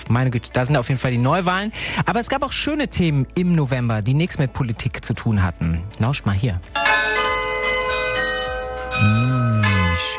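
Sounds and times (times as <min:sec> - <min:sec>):
speech: 0:00.1 - 0:07.2
carillon bells ringing in a church tower: 0:06.7 - 0:10.1.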